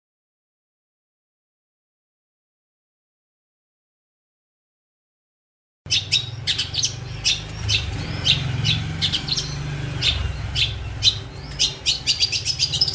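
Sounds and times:
Long-tailed shrike harsh squawky song: 5.9s - 12.9s.

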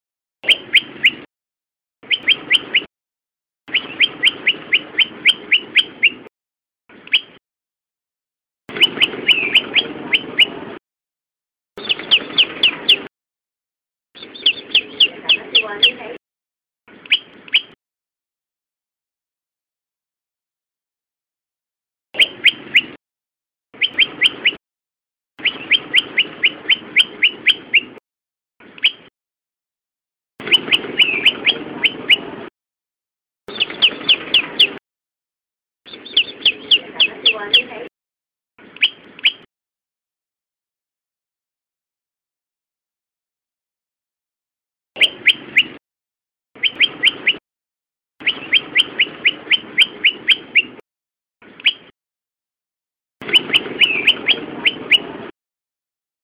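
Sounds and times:
prenjak lumut bird calling: 0.4s - 1.3s, 2.0s - 2.9s, 3.7s - 6.3s, 7.0s - 7.4s, 8.7s - 10.6s, 11.8s - 13.1s, 14.2s - 16.2s, 17.0s - 17.8s, 22.2s - 23.0s, 23.8s - 24.6s, 25.4s - 28.0s, 28.7s - 29.1s, 30.4s - 32.3s, 33.5s - 34.8s, 35.9s - 37.9s, 38.7s - 39.5s, 45.0s - 45.8s, 46.6s - 47.4s, 48.2s - 50.8s, 51.5s - 51.9s, 53.2s - 55.1s.

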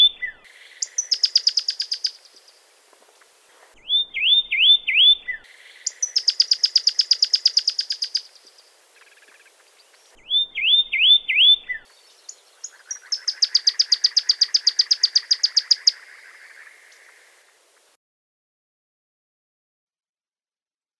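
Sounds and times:
Pyrrhuloxia song with downslurred whistles and rapid trill: 0.0s - 2.2s, 3.8s - 8.4s, 10.2s - 16.0s.

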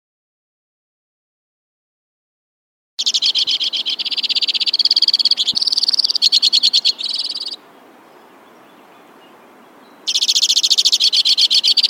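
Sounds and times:
white-winged crossbill singing dry trills: 3.0s - 11.8s.

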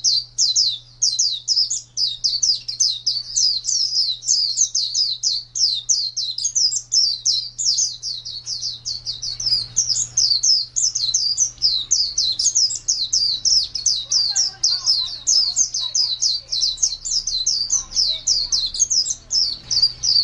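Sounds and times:
white-eye singing in ngalas panjang style: 0.0s - 20.2s.

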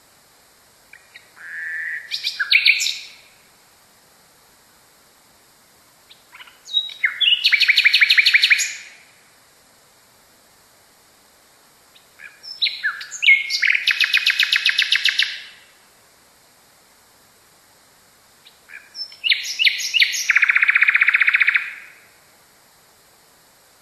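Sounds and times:
nightingale singing phrases of varied chirps and buzzy trills: 0.9s - 3.4s, 6.1s - 9.0s, 11.9s - 15.7s, 18.4s - 22.0s.

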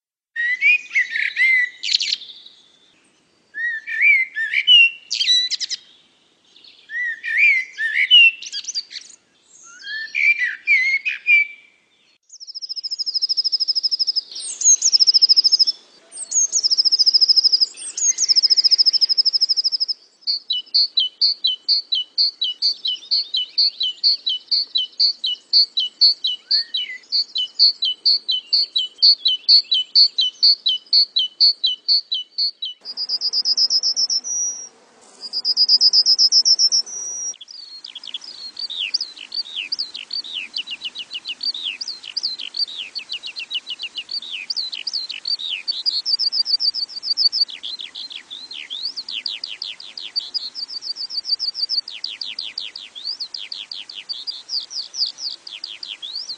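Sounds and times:
lark singing: 0.4s - 2.6s, 3.6s - 5.9s, 6.6s - 56.3s.

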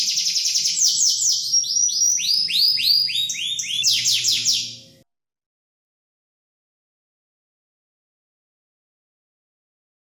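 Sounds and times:
standard canary song whistled notes: 0.0s - 4.8s.

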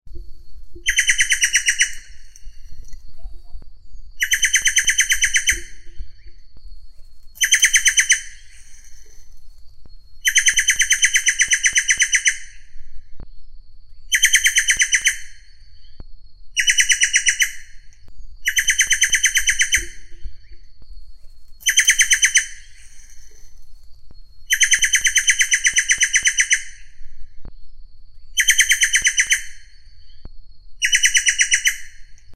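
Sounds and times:
giant antshrike calling: 0.8s - 2.7s, 4.2s - 6.4s, 7.4s - 9.3s, 10.2s - 12.8s, 14.1s - 16.0s, 16.6s - 20.6s, 21.6s - 23.5s, 24.5s - 27.1s, 28.4s - 30.2s, 30.8s - 32.1s.

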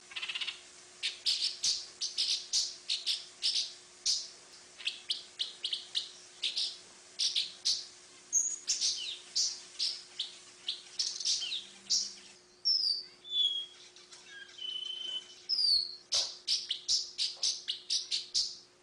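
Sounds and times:
paradise whydah calling: 0.0s - 18.6s.

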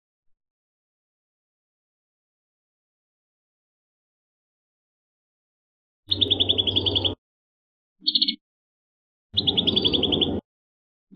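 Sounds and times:
prinia singing trills: 6.1s - 7.2s, 8.0s - 8.4s, 9.4s - 10.4s.

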